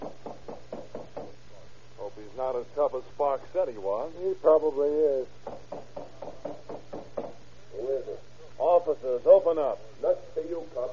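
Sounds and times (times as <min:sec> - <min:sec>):
firm knocks on a door: 0:00.0 - 0:01.4, 0:05.4 - 0:07.4
low hum: 0:00.0 - 0:10.9
speech: 0:02.4 - 0:05.4, 0:07.8 - 0:10.9.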